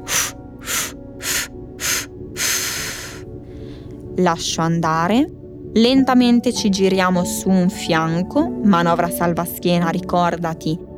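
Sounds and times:
forceful breaths in through the nose and out through the mouth during guided breathing: 0.0s - 4.1s
speech: 4.2s - 10.9s.

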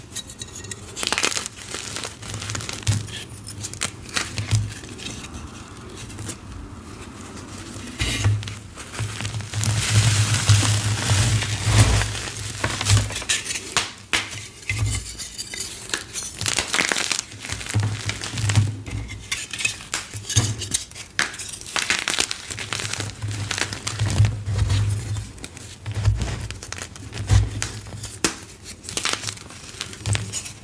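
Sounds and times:
dyed chalk blocks filled with soap and powder crushing: 0.0s - 6.4s, 7.8s - 30.6s.

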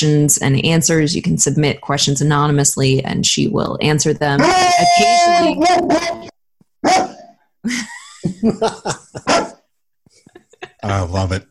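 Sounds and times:
speech: 0.0s - 6.3s, 8.4s - 8.8s
dog barking with sharp yaps and whining yips: 4.4s - 7.4s, 9.2s - 9.6s
laughter: 7.7s - 9.5s, 10.2s - 11.3s.

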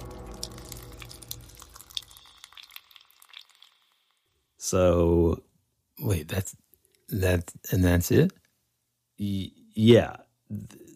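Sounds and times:
liquid dripping: 0.0s - 4.3s
speech: 4.6s - 8.4s, 9.2s - 10.9s.

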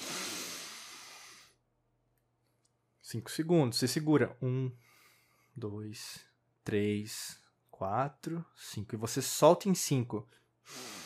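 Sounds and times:
slow deep breath in during a breathing-exercise demonstration: 0.0s - 1.6s, 4.8s - 5.6s, 10.6s - 11.0s
speech: 3.1s - 4.9s, 5.6s - 11.0s.

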